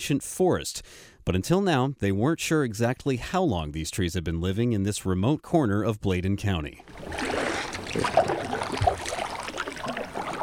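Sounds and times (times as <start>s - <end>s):
speech: 0.0s - 9.1s
soft water lapping on the calm Black River: 6.8s - 10.4s
gentle knocks against a small boat hull: 6.9s - 10.4s.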